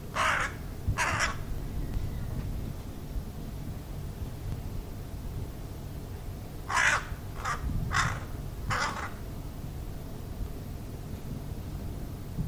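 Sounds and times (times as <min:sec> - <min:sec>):
bird giving harsh raspy caws: 0:00.0 - 0:01.6, 0:06.6 - 0:09.3
low background rumble: 0:00.0 - 0:12.4.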